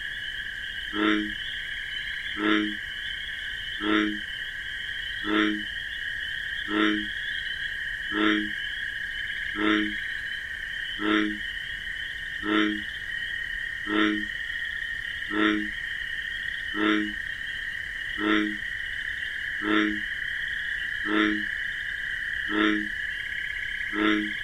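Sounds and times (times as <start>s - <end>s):
American bullfrog croaking in wetlands at night: 0.0s - 24.4s
high buzzing cricket chorus at night: 0.0s - 24.4s.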